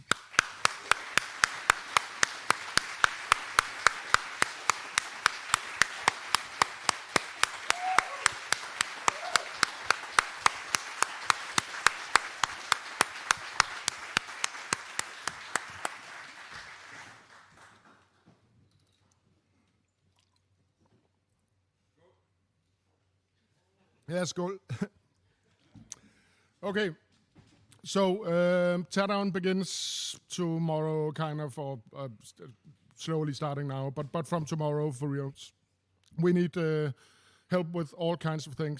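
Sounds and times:
loud sharp clap in quick even rhythm: 0.0s - 18.0s
audience applauding for volunteers: 0.0s - 18.2s
speech: 24.1s - 25.0s, 26.6s - 27.0s, 27.8s - 38.7s.

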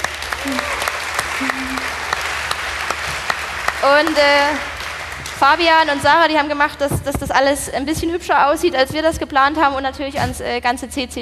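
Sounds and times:
room full of people clapping: 0.0s - 6.4s
speech: 3.8s - 4.7s, 5.4s - 11.2s.

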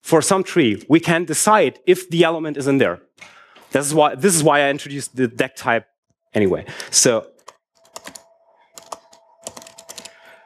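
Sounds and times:
speech: 0.1s - 7.3s
typing code on a computer keyboard: 7.4s - 10.3s.

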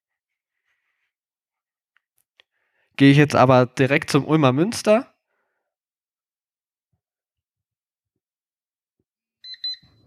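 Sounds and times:
speech: 3.0s - 5.1s
phone alarm app high-pitched electronic beeps: 9.4s - 10.0s.

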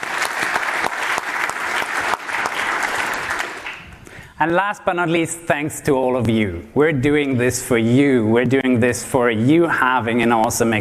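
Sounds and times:
room full of people applauding: 0.0s - 4.0s
speech: 4.4s - 10.7s.

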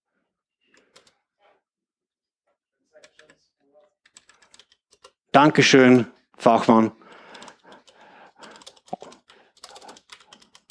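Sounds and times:
typing on a computer keyboard: 0.7s - 1.2s, 3.0s - 3.4s, 4.0s - 5.2s, 7.0s - 10.7s
speech: 5.3s - 7.0s.

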